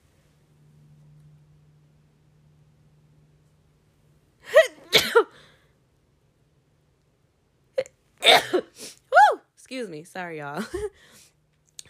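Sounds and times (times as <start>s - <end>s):
person sneezing: 4.5s - 5.4s, 8.2s - 9.1s
speech: 9.8s - 11.2s.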